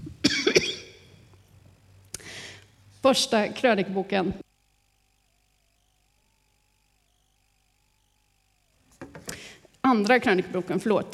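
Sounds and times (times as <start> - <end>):
person coughing: 0.2 - 1.0
speech: 3.0 - 4.4, 9.9 - 11.1.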